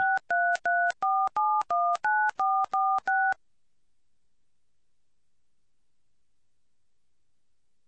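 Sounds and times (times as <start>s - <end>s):
telephone touch-tone keypad tones entering a PIN: 0.0s - 3.4s.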